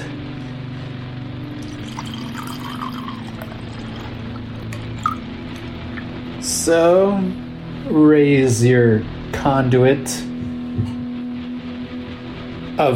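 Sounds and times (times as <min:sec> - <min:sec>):
low hum: 0:00.0 - 0:12.9
red wine pouring into a glass: 0:01.6 - 0:06.1
speech: 0:06.6 - 0:11.0, 0:12.8 - 0:12.9.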